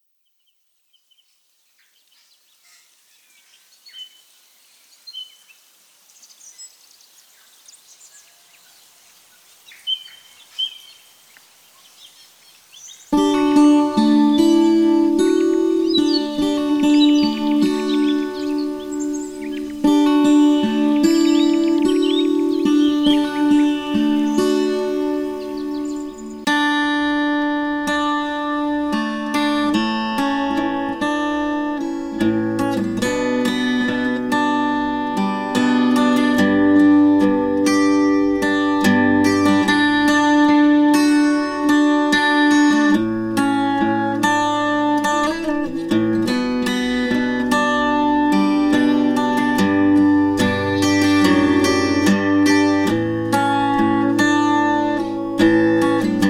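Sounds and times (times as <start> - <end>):
ambient electric guitar music: 13.1 - 56.2.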